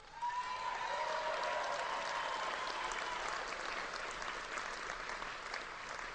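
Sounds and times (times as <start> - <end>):
large crowd applauding: 0.0 - 6.1
crowd cheering with whoops: 0.1 - 3.4.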